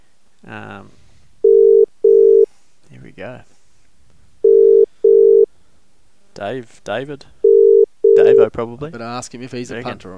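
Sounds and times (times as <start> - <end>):
speech: 0.4 - 1.0, 3.2 - 3.5, 6.4 - 7.4, 8.2 - 10.1
outgoing phone call double-pulse ringing tone: 1.4 - 2.5, 4.4 - 5.5, 7.4 - 8.5.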